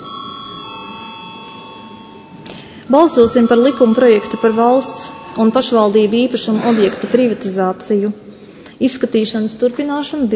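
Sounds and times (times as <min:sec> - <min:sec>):
parliament bell ringing to call members to a vote: 0:00.0 - 0:06.7
speech: 0:02.9 - 0:08.2, 0:08.8 - 0:10.3.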